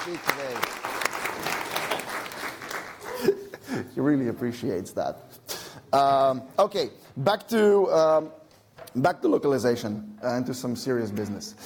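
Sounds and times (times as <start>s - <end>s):
speech: 0.0s - 1.0s, 4.0s - 11.6s
audience applause at a talk: 0.0s - 3.3s.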